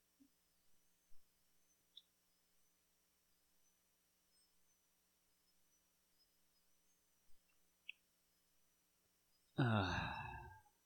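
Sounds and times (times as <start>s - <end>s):
tiny faint clicks: 1.1s - 2.2s, 7.3s - 8.1s
deep drawn-out yawn: 9.6s - 10.6s.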